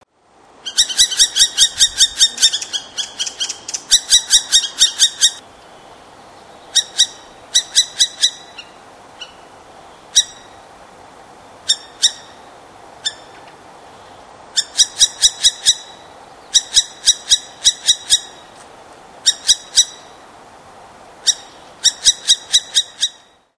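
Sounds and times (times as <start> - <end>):
northern hawk owl Surnia ulula calling: 0.6 - 5.4, 6.4 - 10.7, 11.6 - 13.4, 14.0 - 18.6, 19.2 - 20.3, 21.2 - 23.4.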